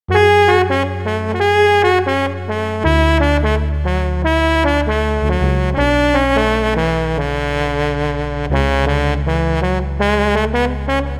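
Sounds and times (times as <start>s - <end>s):
saxophone: 0.1s - 11.1s.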